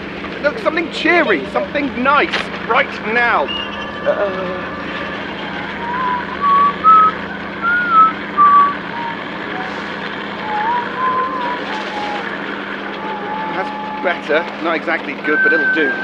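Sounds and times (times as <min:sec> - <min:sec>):
steady low rumble of noise: 0:00.0 - 0:16.0
speech: 0:00.4 - 0:05.1, 0:13.6 - 0:16.0
person whistling a short bouncy cheerful melody loudly: 0:04.8 - 0:12.4, 0:15.2 - 0:16.0.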